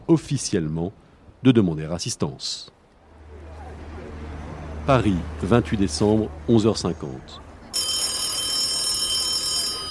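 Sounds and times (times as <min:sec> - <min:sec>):
speech: 0:00.1 - 0:02.8, 0:04.8 - 0:07.4
telephone ringing in a race command post on a barge on the Seine: 0:07.8 - 0:09.9.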